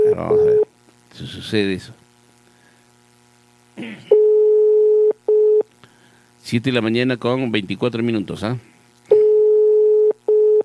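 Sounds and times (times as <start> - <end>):
speech: 0.2 - 0.5, 1.2 - 2.0, 6.5 - 8.7
telephone busy tone beeps on a WhatsApp call: 4.1 - 5.6, 9.1 - 10.6.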